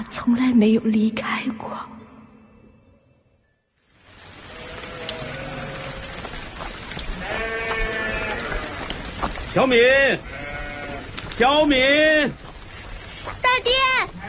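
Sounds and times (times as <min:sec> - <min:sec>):
speech: 0:00.0 - 0:02.0, 0:09.6 - 0:10.4, 0:11.4 - 0:12.4
rain hissing: 0:03.8 - 0:14.2
sheep bleating: 0:04.5 - 0:06.3, 0:07.2 - 0:09.0, 0:09.7 - 0:11.2.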